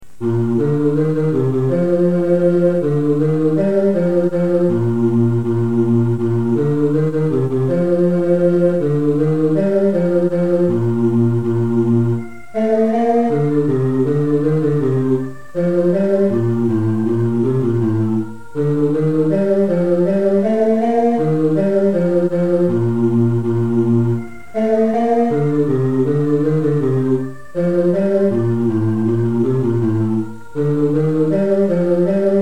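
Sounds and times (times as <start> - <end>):
bass line of a Christmas carol: 0.0 - 32.4.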